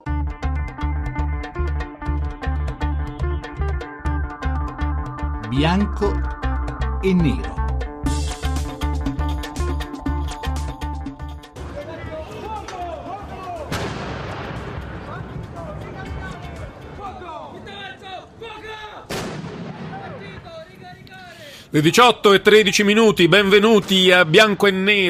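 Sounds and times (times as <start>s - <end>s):
rhythmic pounding: 0.0s - 17.7s
speech: 5.5s - 6.4s, 7.0s - 7.6s, 21.8s - 25.0s
ceremonial cannon salute blasts: 13.7s - 17.0s, 19.0s - 21.0s.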